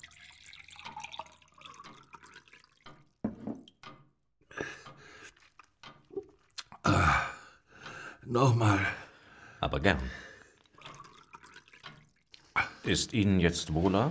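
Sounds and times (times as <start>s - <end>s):
water running from a tap into a glass: 0.0s - 3.2s, 10.6s - 12.5s
speech: 8.3s - 9.0s, 9.6s - 10.2s, 12.9s - 14.0s.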